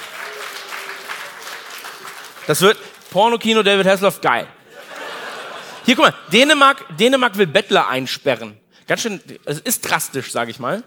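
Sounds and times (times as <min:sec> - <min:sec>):
audience of men clapping at a comedy-style show: 0:00.0 - 0:03.7
speech: 0:02.5 - 0:04.6, 0:05.9 - 0:10.8
laughter: 0:04.6 - 0:06.3.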